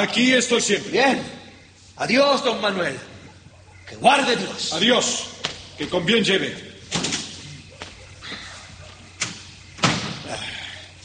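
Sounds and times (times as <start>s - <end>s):
speech: 0.0s - 1.4s, 2.0s - 3.1s, 3.9s - 7.2s
wooden door being pushed shut: 9.2s - 10.2s.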